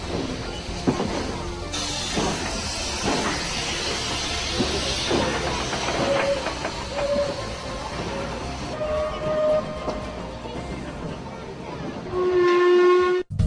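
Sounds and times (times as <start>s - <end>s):
wheels clattering over track joints: 0.0s - 12.2s
train rumbling on rails: 0.0s - 13.3s
sustained whistle-like squeal: 6.0s - 7.6s.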